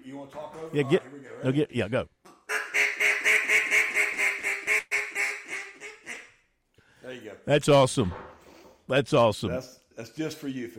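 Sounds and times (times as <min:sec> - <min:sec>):
speech: 0:00.1 - 0:02.2, 0:07.1 - 0:10.7
duck call device imitating waterfowl quacking: 0:02.5 - 0:06.4.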